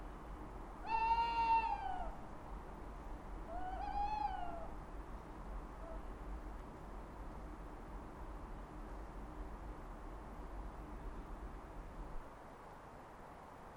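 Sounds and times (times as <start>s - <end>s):
steady low background noise: 0.0s - 13.7s
owl wailing calls: 0.8s - 2.2s, 3.5s - 4.8s.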